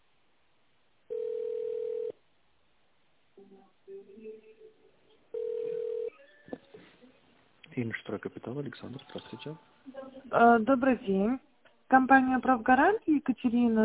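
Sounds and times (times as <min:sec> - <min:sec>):
long mid-pitched telephone beeps while dialing an extension number: 0:01.1 - 0:02.1, 0:05.4 - 0:06.5
speech: 0:07.8 - 0:13.8.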